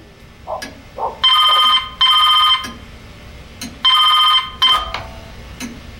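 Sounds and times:
telephone ringing in double-ring bursts: 0:01.2 - 0:02.8, 0:03.8 - 0:05.0.

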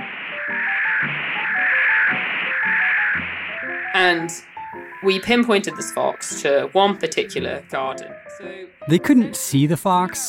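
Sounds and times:
radio receiver static roaring: 0:00.0 - 0:04.7
faint warbling tones: 0:00.0 - 0:09.0
speech: 0:04.0 - 0:10.2.

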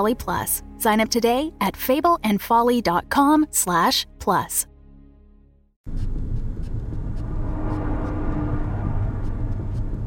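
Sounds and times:
speech: 0:00.0 - 0:04.7, 0:05.8 - 0:06.1
car engine rumbling: 0:05.9 - 0:10.0.

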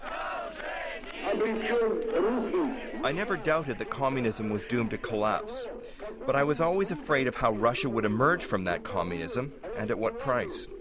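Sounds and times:
crowd cheering, applauding and shouting in greeting in Vladivostok: 0:00.0 - 0:03.1
speech: 0:01.4 - 0:10.7.

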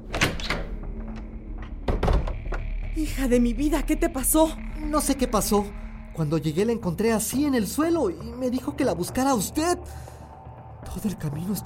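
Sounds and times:
knocks and rattles: 0:00.0 - 0:02.9
front door of a house being unlatched and pulled open: 0:00.0 - 0:03.0
speech: 0:03.0 - 0:10.1, 0:10.9 - 0:11.6.

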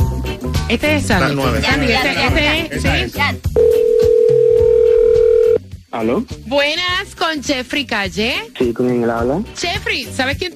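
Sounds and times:
speech: 0:00.7 - 0:04.1, 0:06.0 - 0:10.5
electronic telephone ringback tone while placing a call: 0:03.6 - 0:05.6.

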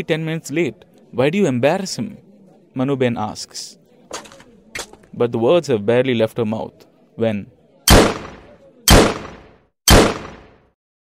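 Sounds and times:
speech: 0:00.0 - 0:02.2, 0:02.8 - 0:04.3, 0:05.1 - 0:08.2
gunshots fired at a man amid a crowd: 0:07.9 - 0:10.7.

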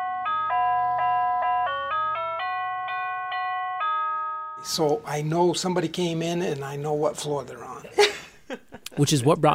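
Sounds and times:
musical doorbell chiming a tune of electronic tones: 0:00.0 - 0:04.9
speech: 0:04.6 - 0:09.5.

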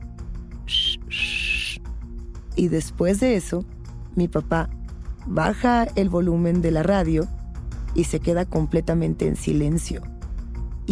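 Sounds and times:
person's mouth imitating an eerie whistle: 0:00.7 - 0:01.8
speech: 0:02.6 - 0:10.1.

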